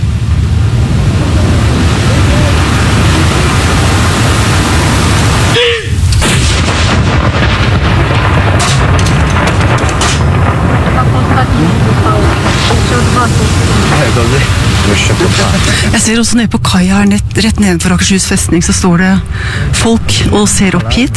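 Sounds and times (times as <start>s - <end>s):
ceremonial cannon salute boom: 0.0s - 16.0s
windy rushing noise: 0.0s - 16.4s
speech: 15.3s - 21.1s.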